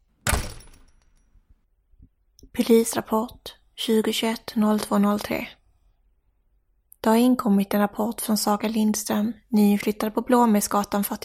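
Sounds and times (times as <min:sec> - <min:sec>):
door slamming shut: 0:00.2 - 0:01.0
speech: 0:02.5 - 0:05.6, 0:07.0 - 0:11.2.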